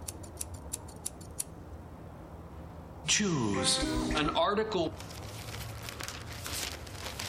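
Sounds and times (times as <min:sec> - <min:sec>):
scissors snipping with crisp metallic clicks: 0:00.0 - 0:01.5
speech: 0:03.1 - 0:05.2.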